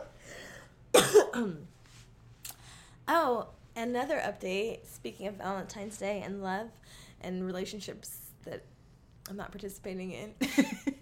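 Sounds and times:
person coughing: 0:00.9 - 0:01.7
speech: 0:01.4 - 0:01.8, 0:03.1 - 0:08.7, 0:09.3 - 0:11.0
quiet breath: 0:06.8 - 0:07.2.

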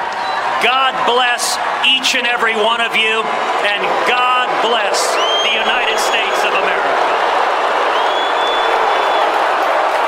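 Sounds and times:
large crowd in an arena booing and jeering: 0:00.0 - 0:10.0
speech: 0:00.6 - 0:07.4
sharp high whistle: 0:07.9 - 0:09.3.

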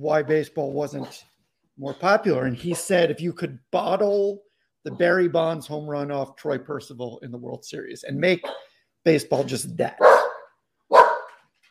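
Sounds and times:
speech: 0:00.0 - 0:10.2
dog barking: 0:08.4 - 0:08.8, 0:10.0 - 0:11.4.

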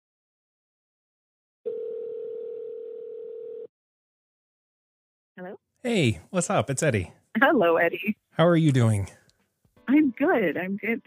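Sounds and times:
telephone dial tone: 0:01.7 - 0:03.7
speech: 0:05.4 - 0:09.2, 0:09.9 - 0:11.0.

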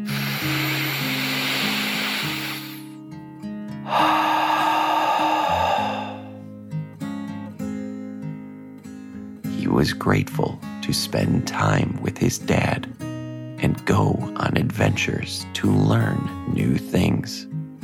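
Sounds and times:
boy breathing slowly and deeply in and out: 0:00.1 - 0:02.9, 0:03.7 - 0:06.5
speech: 0:09.8 - 0:13.0, 0:13.6 - 0:17.5.

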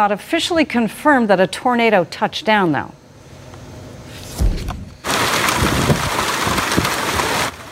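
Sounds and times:
speech: 0:00.0 - 0:03.0
low thump: 0:04.3 - 0:05.0
hail pounding down during a storm in Edmonton: 0:05.0 - 0:07.7.

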